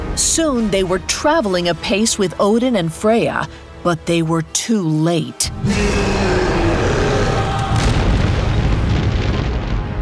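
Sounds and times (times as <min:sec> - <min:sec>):
speech: 0:00.2 - 0:06.3
volcano summit exploding in deep rumbling roar: 0:05.7 - 0:10.0.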